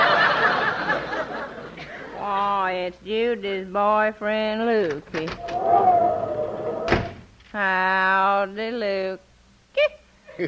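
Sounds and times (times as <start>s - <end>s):
laughter: 0.0s - 2.2s, 10.3s - 10.4s
speech: 2.9s - 6.9s, 7.6s - 10.4s
door slamming shut: 6.6s - 7.3s.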